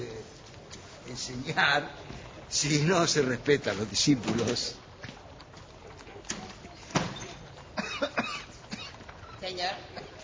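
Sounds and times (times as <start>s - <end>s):
speech: 1.3s - 4.8s
person coughing: 7.8s - 9.0s.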